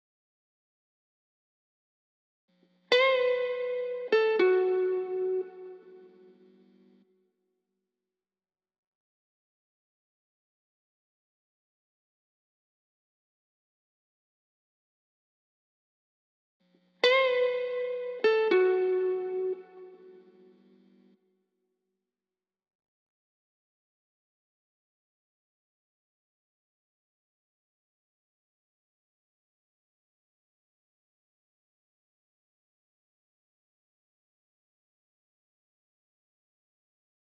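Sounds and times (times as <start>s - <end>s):
lead guitar melody in A major: 2.9s - 6.5s, 17.0s - 20.6s.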